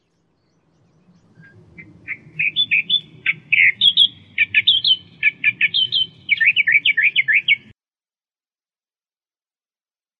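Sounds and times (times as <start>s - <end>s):
constant low hum: 0.0s - 7.7s
Australian reed warbler song of harsh chirps and churring notes: 0.0s - 7.8s.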